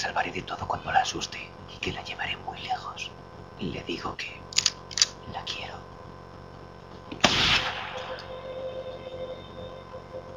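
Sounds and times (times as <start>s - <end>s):
speech: 0.0s - 4.4s, 5.3s - 5.9s
low steady drone: 0.0s - 10.3s
single gunshot fired with a silencer: 7.2s - 8.2s.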